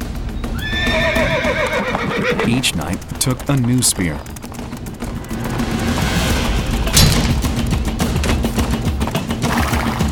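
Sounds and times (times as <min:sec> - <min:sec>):
hooves of charging knights' horses clip-clopping on a lawn: 0:00.0 - 0:06.5, 0:07.2 - 0:10.1
horse giving a loud quavering whinny: 0:00.4 - 0:02.8
speech: 0:02.5 - 0:04.4.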